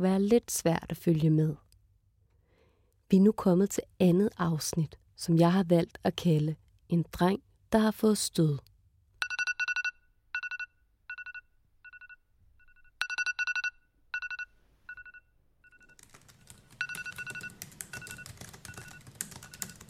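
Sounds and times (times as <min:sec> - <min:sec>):
speech: 0:00.0 - 0:01.6, 0:03.1 - 0:08.7
iPhone alarm ringtone chiming melody: 0:09.2 - 0:16.0, 0:16.7 - 0:19.8.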